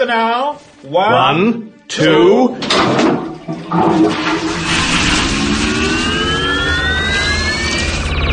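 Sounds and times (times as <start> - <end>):
speech: 0.0 - 4.6
chain toilet flushing: 2.6 - 7.2
rising whining tones of a toilet flush: 3.4 - 8.3.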